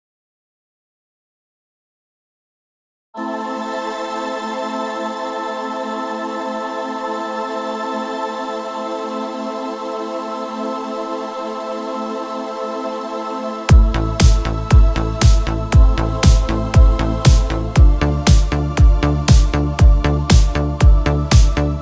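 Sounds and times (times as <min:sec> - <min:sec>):
italo disco style instrumental cover of Gregorian chant: 0:13.7 - 0:21.8.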